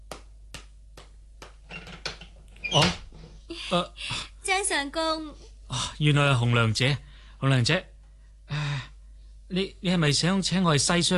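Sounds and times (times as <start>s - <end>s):
wooden door creaking open: 1.7s - 3.4s
speech: 2.7s - 3.0s, 3.7s - 7.9s, 9.5s - 11.1s.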